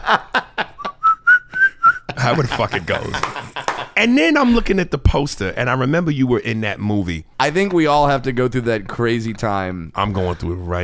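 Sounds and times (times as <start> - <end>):
laughter: 0.0 - 4.5
speech: 0.1 - 0.3, 2.3 - 3.4, 4.0 - 10.8
person whistling an aftershave commercial jingle: 0.8 - 2.1.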